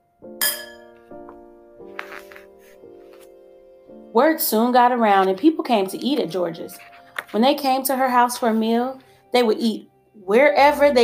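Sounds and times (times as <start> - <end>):
new pots and pans clinking together: 0.4 - 1.0
speech: 4.1 - 11.0.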